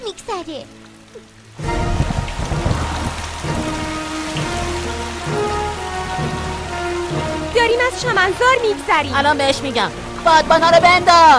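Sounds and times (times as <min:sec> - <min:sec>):
steady rain pattering on a surface: 0:00.0 - 0:11.3
speech: 0:00.1 - 0:01.9, 0:07.6 - 0:11.3
low rumble: 0:01.6 - 0:05.4.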